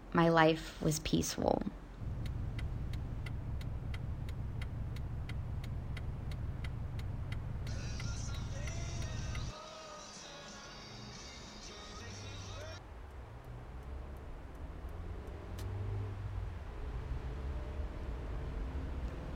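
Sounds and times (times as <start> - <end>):
speech: 0.4 - 1.8
steady low road rumble inside a moving car: 1.8 - 9.6, 11.1 - 19.3
car engine drone from inside a moving car: 1.9 - 9.6, 11.2 - 19.3
regular ticking: 2.0 - 9.6, 11.7 - 17.4.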